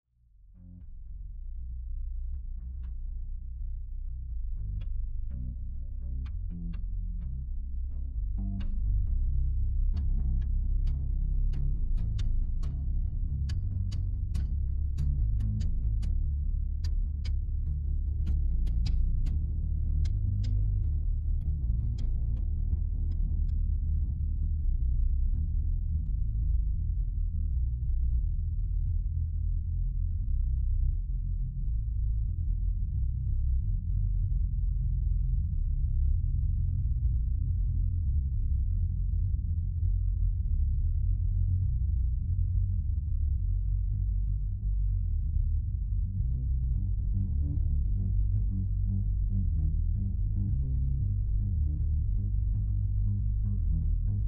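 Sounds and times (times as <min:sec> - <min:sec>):
bass noise: 0:00.6 - 0:54.2.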